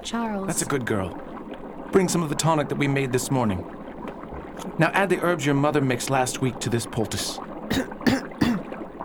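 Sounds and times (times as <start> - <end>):
faint hiss: 0.0 - 9.0
speech: 0.1 - 1.3, 1.9 - 3.8, 4.6 - 8.0
harsh coughs from a person ill with influenza: 7.7 - 8.7.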